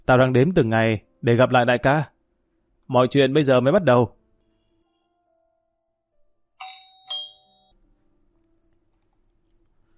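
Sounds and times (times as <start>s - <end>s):
speech: 0.1s - 2.1s, 2.9s - 4.2s
house doorbell two-tone chime: 6.6s - 7.8s.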